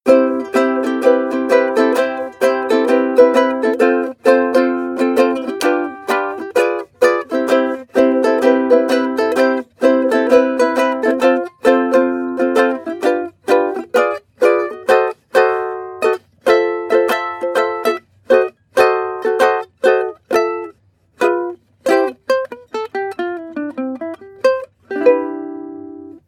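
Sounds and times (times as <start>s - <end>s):
ukulele strumming: 0.1s - 26.2s.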